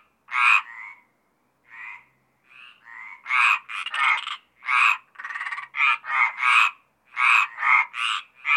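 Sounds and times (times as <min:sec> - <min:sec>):
Mediterranean tree frogs croaking in a chorus: 0:00.0 - 0:08.5.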